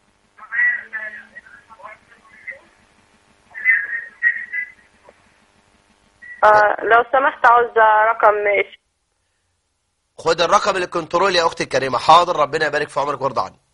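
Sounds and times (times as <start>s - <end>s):
faint steady hum: 0.0s - 13.7s
television voices over a phone line: 0.3s - 5.5s, 6.2s - 8.9s
speech: 6.4s - 8.8s, 10.2s - 13.6s.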